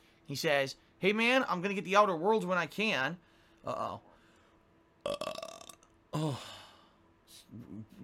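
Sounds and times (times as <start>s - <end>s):
speech: 0.3s - 4.1s, 5.0s - 5.5s, 6.1s - 6.6s
person burping: 5.0s - 6.6s.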